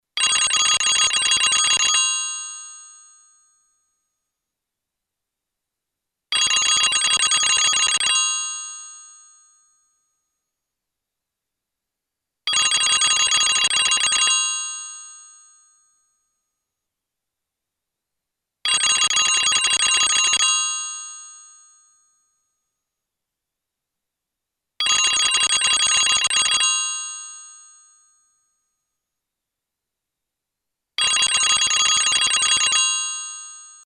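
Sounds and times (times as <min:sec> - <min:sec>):
old German telephone: 0:00.2 - 0:02.4, 0:06.3 - 0:08.7, 0:12.5 - 0:14.9, 0:18.7 - 0:21.0, 0:24.8 - 0:27.3, 0:31.0 - 0:33.8.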